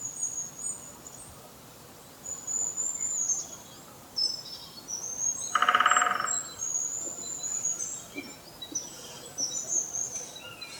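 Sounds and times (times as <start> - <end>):
woodpecker drumming: 5.5 - 6.5.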